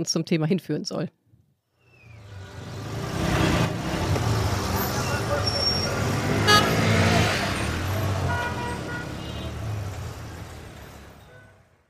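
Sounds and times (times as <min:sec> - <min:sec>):
speech: 0:00.0 - 0:01.2
passing vehicles: 0:01.8 - 0:11.8
congested street traffic rumble in Kabul: 0:01.9 - 0:11.8
idling engines: 0:02.4 - 0:11.2
short car horn toots: 0:05.1 - 0:07.2, 0:08.0 - 0:09.7.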